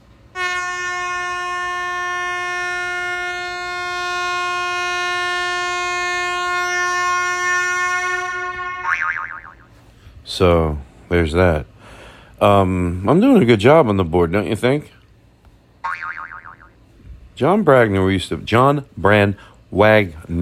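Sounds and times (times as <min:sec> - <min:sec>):
loud sustained horn blast with bright harmonic tone: 0:00.3 - 0:09.0
speech: 0:10.4 - 0:11.7, 0:12.4 - 0:15.0, 0:17.4 - 0:20.4.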